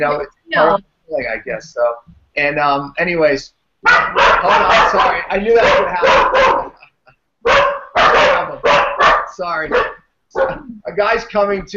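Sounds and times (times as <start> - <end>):
speech: 0.0 - 6.6, 9.4 - 11.7
faint small noises: 0.0 - 11.7
dog barking: 3.8 - 6.8, 7.4 - 10.6.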